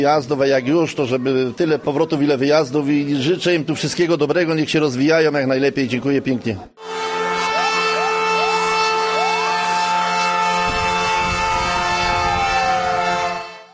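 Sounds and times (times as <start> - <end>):
speech: 0.0 - 6.9
siren of a new volunteer fire brigade fire engine in Mierzyce wailing: 6.8 - 13.7
steady horn-like tone: 6.8 - 13.7.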